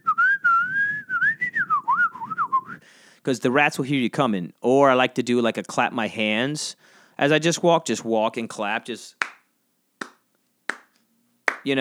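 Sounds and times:
person whistling a melody while walking: 0.0 - 2.8
speech: 3.2 - 9.2.

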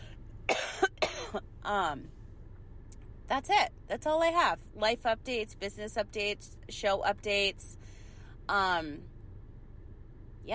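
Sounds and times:
person coughing: 0.5 - 1.4
speech: 1.3 - 2.2, 3.3 - 7.8, 8.5 - 9.1.

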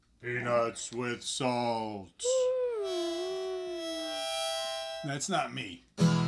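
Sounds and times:
speech: 0.2 - 2.6, 5.0 - 6.1
sustained harmonica note: 2.2 - 5.4.

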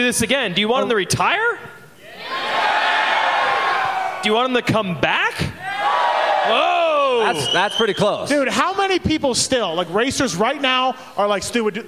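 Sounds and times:
speech: 0.0 - 1.7, 4.2 - 5.5, 6.4 - 11.8
large live theater audience roaring and shouting: 2.0 - 4.4, 5.6 - 7.8.

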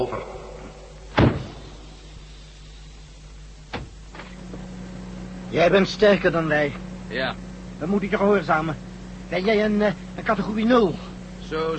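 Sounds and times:
speech: 0.0 - 0.4, 5.5 - 11.7
steady low machine hum: 0.0 - 11.7
heavy airlock door opening with a loud thud and rush: 1.1 - 1.7, 3.7 - 4.3.

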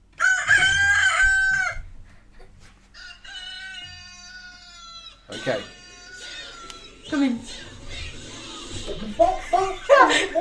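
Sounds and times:
farmyard noise: 0.1 - 1.9, 2.9 - 8.8
rooster crowing: 0.2 - 1.9, 2.9 - 7.0
speech: 5.4 - 5.8, 7.1 - 7.7, 8.9 - 10.3
laughter: 8.1 - 10.3.

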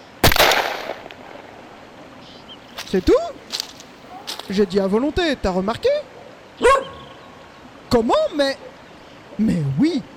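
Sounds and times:
rifle shot fired on command at a shooting exercise: 0.2 - 1.6
speech: 2.9 - 3.6, 4.5 - 6.9, 7.9 - 8.7, 9.4 - 10.1.

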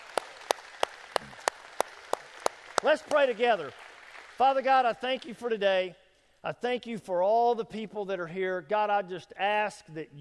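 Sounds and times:
church congregation clapping hands: 0.0 - 5.4
speech: 2.8 - 3.8, 4.4 - 10.1.

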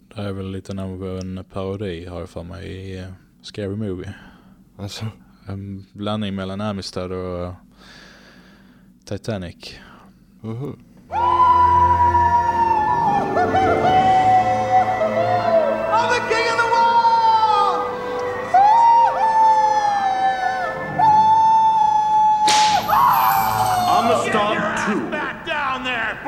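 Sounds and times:
speech: 0.2 - 8.0, 9.1 - 11.3, 13.4 - 14.0
steady wailing tone: 11.1 - 24.9
whip crack lashing: 22.4 - 23.2.

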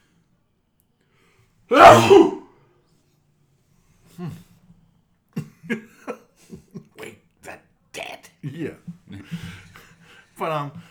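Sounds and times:
speech: 1.7 - 2.4, 10.5 - 10.8
loud sneeze: 1.7 - 2.5.

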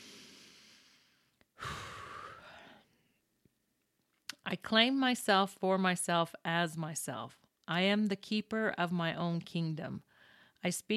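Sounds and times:
person taking a deep breath: 0.0 - 3.0, 10.1 - 10.6
speech: 4.5 - 10.9.

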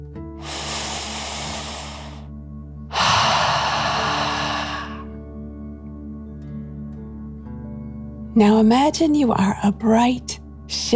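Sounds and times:
deep drawn-out inhale through the nose: 0.4 - 2.3, 2.9 - 5.1
forceful rushing exhale through the mouth: 0.4 - 2.3, 2.9 - 5.1
speech: 8.4 - 10.9.

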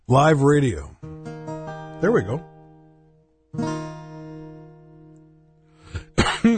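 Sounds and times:
speech: 0.1 - 0.9, 2.0 - 2.5, 3.6 - 3.8
sustained guitar chord ringing: 1.0 - 5.8
person coughing harshly: 5.9 - 6.5.

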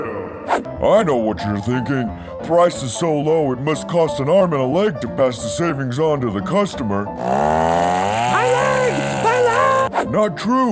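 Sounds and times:
speech: 0.8 - 8.6, 10.0 - 10.6
chainsaw idling and revving: 7.2 - 9.9.

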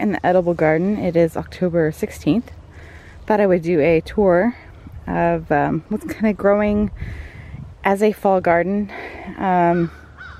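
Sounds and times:
speech: 0.0 - 2.6, 3.3 - 10.0
crow cawing outdoors: 9.8 - 10.3.

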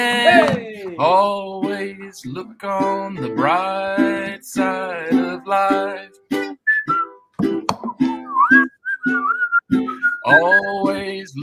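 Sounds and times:
speech: 0.0 - 6.2, 10.3 - 11.4
person whistling a short bouncy tune: 6.4 - 7.2, 7.8 - 11.2.

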